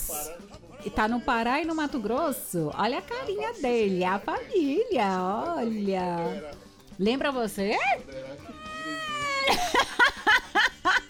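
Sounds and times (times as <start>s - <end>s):
speech: 0.2s - 8.6s
person imitating a cat's meow: 8.5s - 9.5s
laughter: 9.2s - 11.0s.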